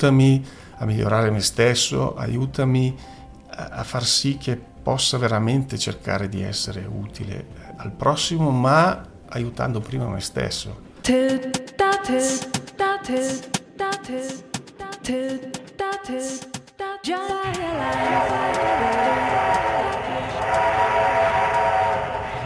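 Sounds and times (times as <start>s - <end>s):
speech: 0.0s - 21.3s
train running on rails with rumbling roar and tonal whine: 17.9s - 22.4s.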